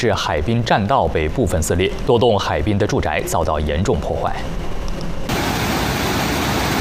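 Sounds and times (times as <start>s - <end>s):
speech: 0.0s - 4.6s
huge ocean waves from tropical storm remnants pounding the coast in Long Beach California: 5.3s - 6.7s.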